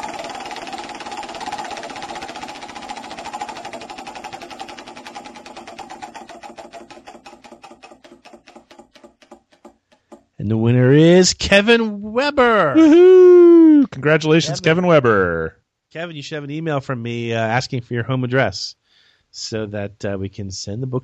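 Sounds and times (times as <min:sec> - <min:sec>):
prize wheel spinning for a giveaway drawing: 0:00.0 - 0:10.3
speech: 0:10.4 - 0:21.0.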